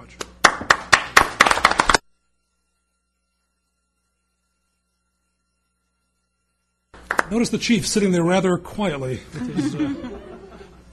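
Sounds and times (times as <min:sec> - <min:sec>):
small group audience applause: 0:00.4 - 0:02.0
speech: 0:07.3 - 0:10.2
laughter: 0:09.3 - 0:10.9.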